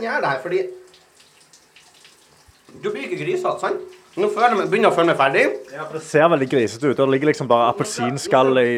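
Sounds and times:
speech: 0.0s - 0.8s, 2.7s - 8.7s
water running from a tiny shower: 0.0s - 8.0s
faint splashes: 0.8s - 6.8s.

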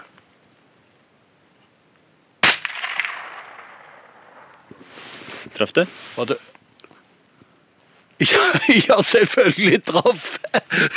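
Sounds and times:
faint outdoor noise: 0.0s - 10.9s
single sharp gunshot with rolling echo: 2.4s - 4.5s
speech: 5.6s - 6.5s, 8.2s - 10.9s
laughter: 8.2s - 10.9s.

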